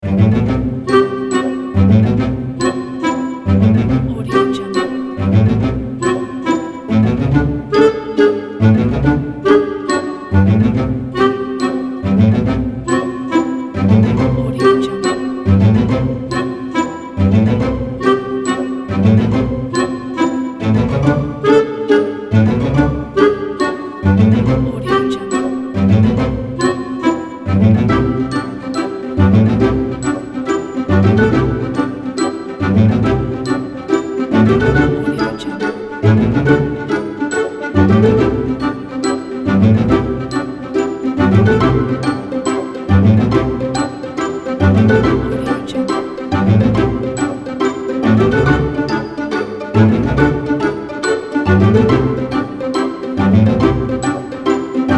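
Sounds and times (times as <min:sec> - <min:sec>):
pizzicato strings in comedy cartoon music: 0:00.0 - 0:54.9
woodwinds in comedy cartoon music: 0:00.0 - 0:54.9.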